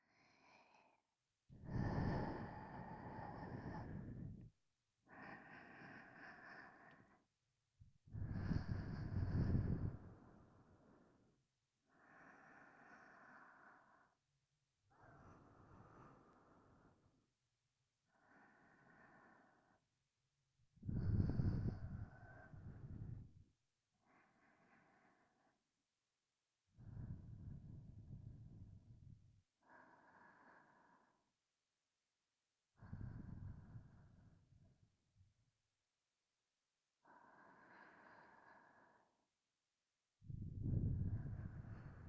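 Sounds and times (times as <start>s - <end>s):
person breathing in sleep in the right ear: 0.0s - 7.3s, 8.1s - 14.2s, 14.9s - 17.2s, 18.1s - 19.8s, 20.8s - 23.4s, 24.1s - 25.6s, 26.8s - 31.3s, 32.8s - 34.5s, 37.0s - 39.3s, 40.3s - 42.0s.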